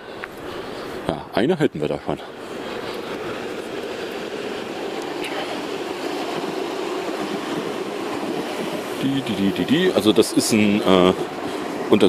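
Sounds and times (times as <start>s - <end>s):
two S-Bahn commuter trains rumbling past: 0.0s - 12.0s
speech: 1.1s - 2.4s, 9.0s - 12.0s.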